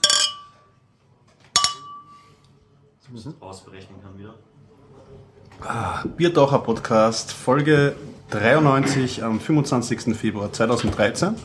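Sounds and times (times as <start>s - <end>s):
glasses clinking in a toast: 0.0s - 0.7s, 1.5s - 2.3s
speech: 3.1s - 11.4s.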